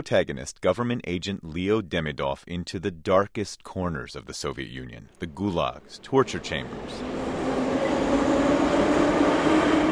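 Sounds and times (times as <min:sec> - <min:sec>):
speech: 0:00.0 - 0:07.3
subway train rumbling through an underground metro station: 0:05.8 - 0:09.9.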